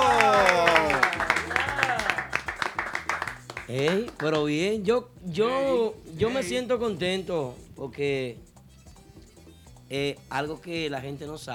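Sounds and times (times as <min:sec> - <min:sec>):
loud voices or sung tones swooping up and down: 0:00.0 - 0:02.2
group of musicians clapping: 0:00.0 - 0:04.6
speech: 0:03.7 - 0:08.5, 0:09.9 - 0:11.5.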